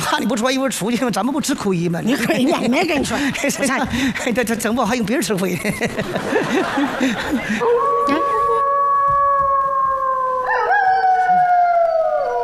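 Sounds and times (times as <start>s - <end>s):
speech: 0.1s - 8.4s
laughter: 2.1s - 8.6s
wolf howling: 7.6s - 12.4s.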